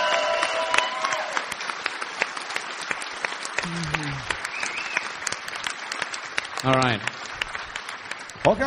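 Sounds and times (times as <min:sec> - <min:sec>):
crowd at an event applauding: 0:00.0 - 0:08.6
brief rising whistle-like tone: 0:04.5 - 0:05.0
speech: 0:06.6 - 0:07.2, 0:08.4 - 0:08.6.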